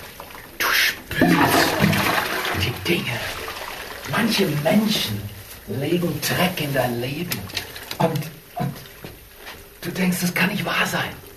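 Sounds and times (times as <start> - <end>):
toilet flushing and refilling: 0.0 - 5.4
speech: 2.9 - 3.4, 4.1 - 8.7, 9.8 - 11.2.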